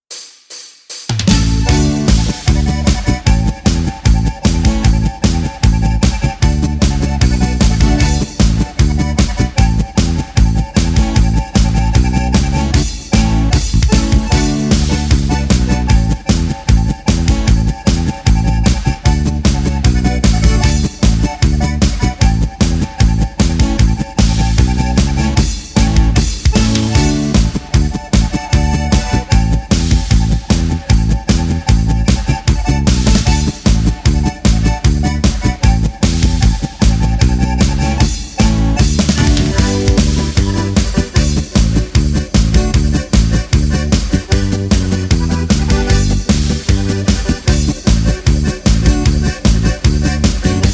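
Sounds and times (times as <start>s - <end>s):
polka with accordion accompaniment: 1.3s - 50.7s.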